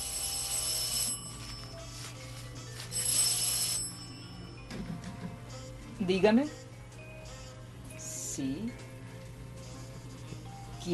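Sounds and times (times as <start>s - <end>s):
landline extension telephone ringing on a terrace: 0.0s - 5.4s
speech: 6.0s - 6.6s, 8.4s - 8.8s.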